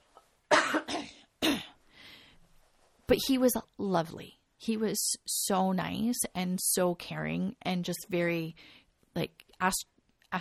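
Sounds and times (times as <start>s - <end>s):
harsh coughs: 0.5s - 1.8s
speech: 3.1s - 10.4s.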